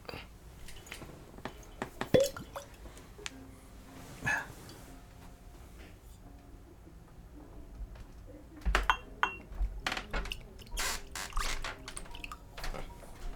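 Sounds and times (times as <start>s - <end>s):
water trickling into whiskey: 0.1s - 3.0s, 10.1s - 13.3s
glass clinking: 0.7s - 2.8s, 8.8s - 9.6s, 10.3s - 13.3s
light whiskey aged thirteen years poured into a glass: 2.0s - 2.8s.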